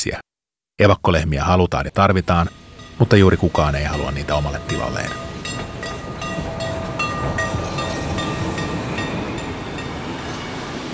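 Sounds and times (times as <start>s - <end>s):
speech: 0.0s - 5.7s
train rumbling on rails: 2.0s - 10.9s
faint metallic squeals of train: 2.3s - 10.8s.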